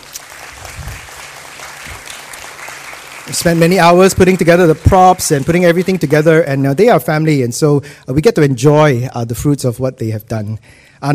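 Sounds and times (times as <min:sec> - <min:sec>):
crowd applauding in a room: 0:00.0 - 0:06.9
speech: 0:03.3 - 0:11.1.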